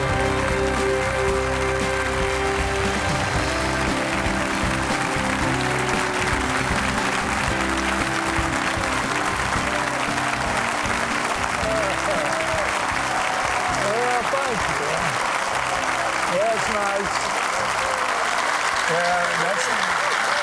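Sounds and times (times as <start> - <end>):
faint indistinct voices and cheers from the audience: 0.0 - 20.4
large audience applauding: 0.0 - 20.4.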